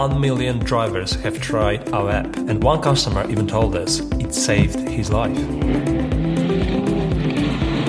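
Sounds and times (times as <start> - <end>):
speech: 0.0 - 6.1
rally car engine revving hard through quick gear changes: 4.5 - 7.8.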